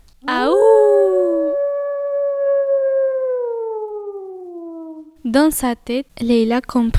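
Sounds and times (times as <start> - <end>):
person imitating a werewolf howling at the moon: 0.2 - 5.2
speech: 5.3 - 6.9.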